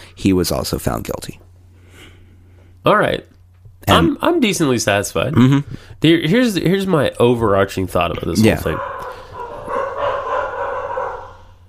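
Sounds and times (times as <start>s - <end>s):
speech: 0.2s - 1.5s, 2.8s - 9.0s
dog barking: 8.6s - 11.6s.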